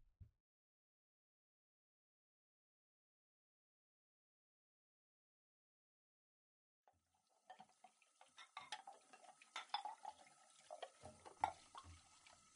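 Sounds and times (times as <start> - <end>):
dishes and cutlery clinking while washed at a sink: 7.5 - 12.0.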